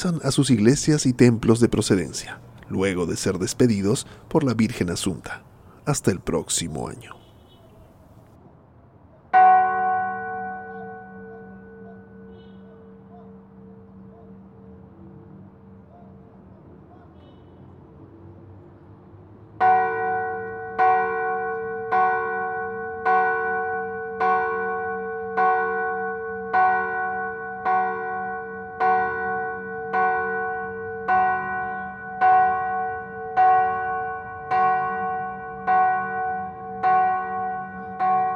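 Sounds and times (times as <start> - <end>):
church bells ringing: 0.0 - 7.2, 9.3 - 15.9, 19.6 - 38.3
speech: 0.0 - 7.2.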